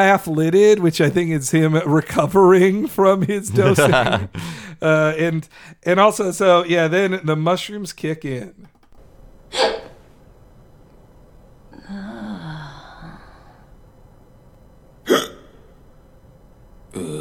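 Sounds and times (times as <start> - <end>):
speech: 0.0 - 8.7, 9.5 - 9.8
laughter: 2.3 - 4.8
loud hiccups: 9.5 - 10.0, 15.0 - 15.8, 16.9 - 17.1.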